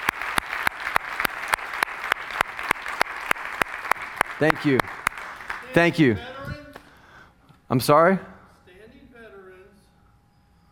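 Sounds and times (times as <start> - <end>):
large audience applauding for veterans: 0.0 - 6.2
speech: 4.4 - 5.0, 5.7 - 6.6, 7.7 - 8.3.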